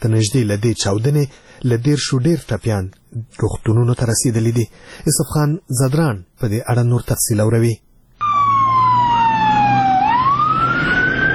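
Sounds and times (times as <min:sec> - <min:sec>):
speech: 0:00.0 - 0:07.9
fire engine and ambulance emergency siren wailing: 0:08.2 - 0:11.3.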